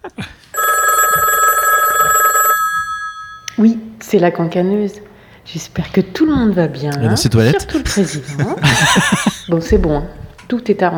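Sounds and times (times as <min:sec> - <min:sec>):
telephone electronic bell trill: 0:00.6 - 0:03.5
speech: 0:03.6 - 0:10.9
laughter: 0:07.3 - 0:09.7.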